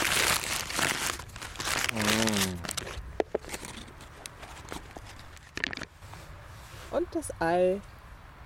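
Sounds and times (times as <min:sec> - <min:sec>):
sandwiches unwrapped from crinkly sandwich paper: 0:00.0 - 0:06.2
speech: 0:01.9 - 0:02.6, 0:07.0 - 0:07.9.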